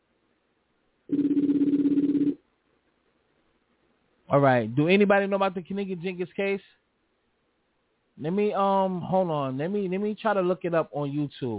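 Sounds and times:
ringback tone on an outgoing phone call: 1.1 - 2.4
speech: 4.3 - 6.8, 8.2 - 11.5.

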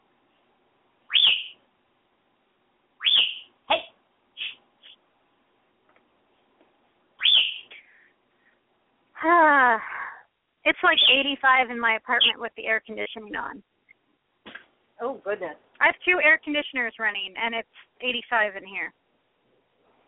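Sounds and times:
bird calling: 1.1 - 1.6, 3.0 - 5.0, 7.2 - 7.9, 10.9 - 11.3
speech: 10.6 - 13.7, 15.0 - 19.0.

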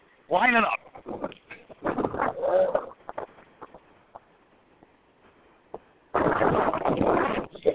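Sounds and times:
speech: 0.3 - 1.4, 2.4 - 2.9
faint scattered clicks and rustles: 0.8 - 7.7
gusty wind buffeting a microphone outdoors at a racetrack: 0.9 - 3.8, 5.8 - 7.7.

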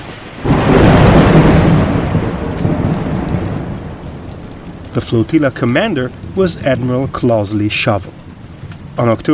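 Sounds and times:
deep rumbling thunder: 0.0 - 9.3
steady rain: 0.0 - 9.3
storm wind: 0.0 - 9.3
speech: 5.0 - 8.2, 9.0 - 9.3.

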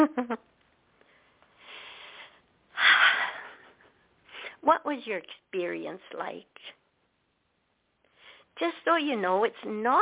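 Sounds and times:
deep breaths during a relaxation exercise: 1.0 - 3.6, 8.0 - 8.6
speech: 4.9 - 6.8, 8.6 - 10.0.

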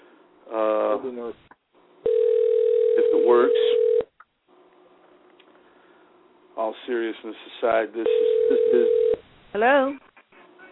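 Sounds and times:
speech: 0.5 - 1.6, 3.1 - 4.1, 6.9 - 10.1
telephone number being dialed: 2.1 - 4.0, 8.1 - 9.2.

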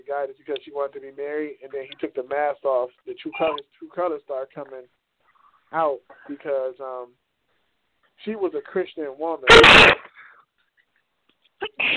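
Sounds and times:
speech: 0.1 - 5.0, 5.7 - 7.2, 8.2 - 10.0, 11.6 - 11.9
sneeze: 9.5 - 10.3, 11.6 - 11.9.

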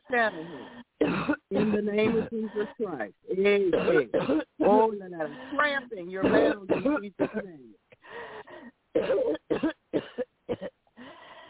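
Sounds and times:
speech: 0.1 - 7.8
person coughing: 1.0 - 2.8, 3.7 - 4.9, 6.2 - 7.5, 9.0 - 10.8.

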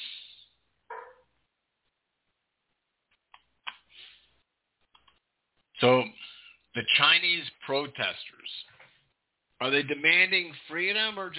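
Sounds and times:
dog barking: 0.9 - 1.3
speech: 5.8 - 6.1, 6.8 - 8.3, 9.6 - 11.3.

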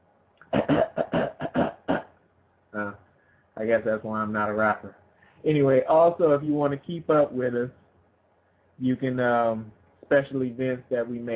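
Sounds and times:
forceful throat clearing: 0.4 - 2.1
speech: 3.7 - 7.8, 8.8 - 11.3.

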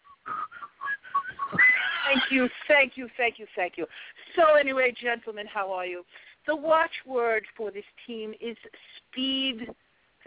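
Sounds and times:
group of people whistling a cheerful tune: 0.0 - 2.2
laughter: 1.1 - 2.6
speech: 2.3 - 10.2.

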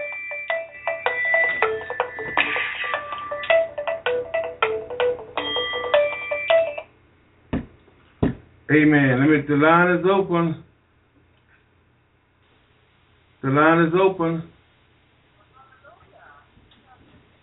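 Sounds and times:
mobile phone ringtone melody: 0.0 - 6.9
dull thump: 7.5 - 8.5
speech: 8.7 - 10.6, 13.5 - 14.5.

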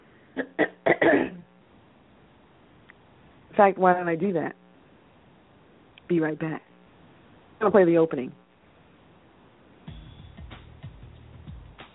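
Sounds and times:
person coughing with something caught in the throat: 0.4 - 1.4
speech: 3.6 - 4.6, 6.1 - 6.7, 7.6 - 8.4.

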